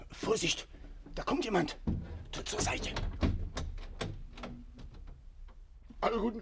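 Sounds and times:
speech: 0:00.3 - 0:03.2, 0:06.0 - 0:06.3
pounding on a door as police demand entry: 0:01.8 - 0:04.6.

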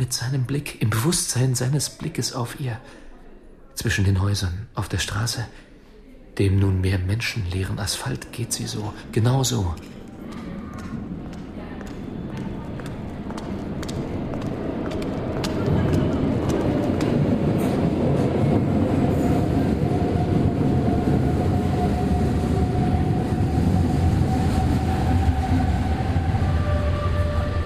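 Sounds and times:
speech: 0:00.0 - 0:03.0, 0:03.8 - 0:05.6, 0:06.4 - 0:10.4
subway train arriving at an underground station: 0:06.4 - 0:27.6.

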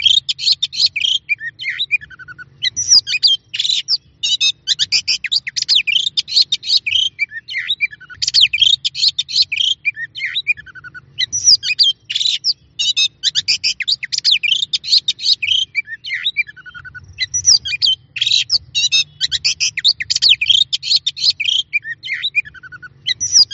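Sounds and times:
Oriental magpie-robin singing: 0:00.0 - 0:23.5
faint low hum: 0:00.0 - 0:23.5.

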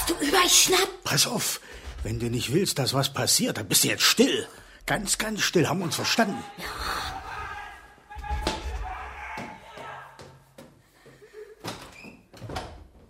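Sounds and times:
speech: 0:00.3 - 0:07.2
apartment door being opened: 0:11.6 - 0:13.0.

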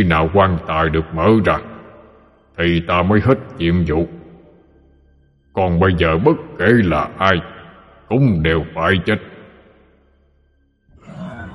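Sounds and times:
speech: 0:00.0 - 0:01.7, 0:02.6 - 0:04.2, 0:05.6 - 0:09.3
monstrous creature roaring in a cave: 0:11.0 - 0:11.5.

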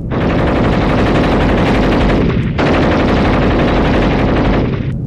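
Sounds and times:
machine gun firing at Messerschmitt aircraft: 0:00.1 - 0:04.9.

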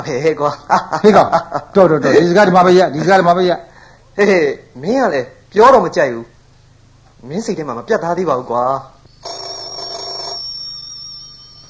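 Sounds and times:
speech: 0:00.0 - 0:06.3, 0:07.2 - 0:09.4
telephone with bright buzzy electronic ring: 0:09.2 - 0:11.6.

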